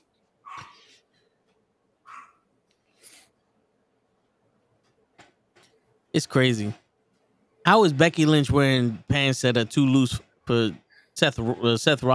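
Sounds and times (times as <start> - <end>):
dog barking: 0.4 - 0.9, 2.0 - 2.4
speech: 6.2 - 6.8, 7.7 - 12.1.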